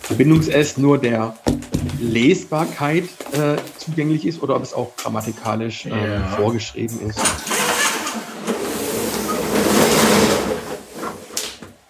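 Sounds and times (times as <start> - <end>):
speech: 0.1 - 7.5
roller shutter being lowered, rattling and whirring: 7.4 - 11.4.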